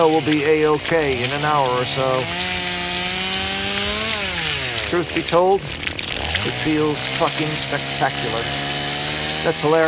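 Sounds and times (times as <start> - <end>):
speech: 0.0 - 2.6, 4.9 - 5.8, 6.4 - 8.6, 9.4 - 9.8
chainsaw cutting: 0.0 - 9.8.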